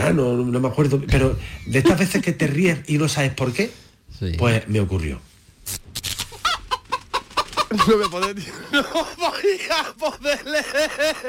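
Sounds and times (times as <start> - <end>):
speech: 0.1 - 5.8, 7.7 - 11.2
chickens clucking at a Utrera chicken or rooster championship: 6.2 - 8.4
laughter: 6.7 - 11.2.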